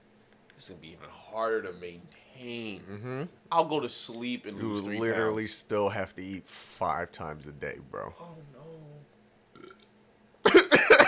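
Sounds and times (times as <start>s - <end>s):
speech: 0.6s - 9.1s
loud throaty burps: 9.5s - 11.0s.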